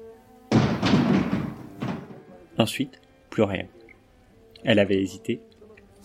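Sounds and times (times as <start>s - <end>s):
heavy dull thud of a body falling to the floor: 0.5s - 2.4s
rumbling scuffling: 0.5s - 2.5s
second softer impact: 0.5s - 2.6s
speech: 2.6s - 3.8s, 4.6s - 5.5s.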